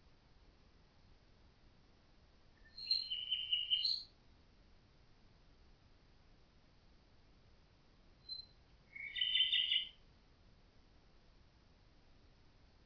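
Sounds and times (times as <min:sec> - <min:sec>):
common nightingale singing: 0:02.6 - 0:04.2, 0:08.2 - 0:10.0.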